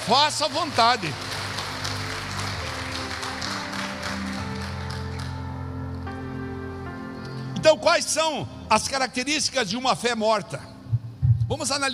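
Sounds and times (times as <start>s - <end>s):
church audience clapping: 0.0s - 6.1s
speech: 0.1s - 1.3s, 7.7s - 10.7s, 11.5s - 11.9s.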